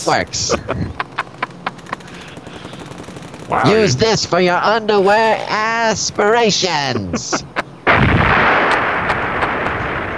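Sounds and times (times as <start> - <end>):
speech: 0.0 - 1.1, 3.5 - 7.5
laughter: 0.3 - 2.7, 3.5 - 4.3, 6.6 - 7.8
gunfire during aerial combat against enemy aircraft: 1.2 - 4.0, 7.9 - 10.1.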